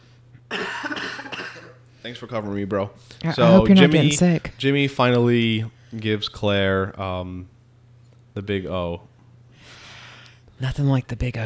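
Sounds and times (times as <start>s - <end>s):
harsh cough: 0.5s - 1.8s
speech: 2.0s - 7.5s, 8.4s - 9.1s, 10.6s - 11.4s.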